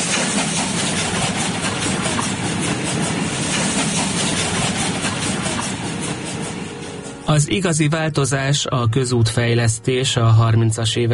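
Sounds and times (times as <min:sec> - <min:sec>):
steam train rolling on rails: 0:00.0 - 0:08.7
speech: 0:07.4 - 0:11.1.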